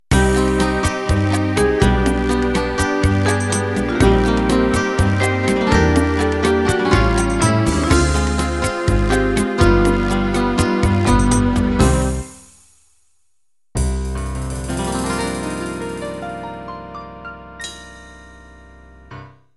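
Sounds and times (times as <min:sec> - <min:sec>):
unplugged Latin music ending: 0:00.1 - 0:12.8, 0:13.8 - 0:16.6.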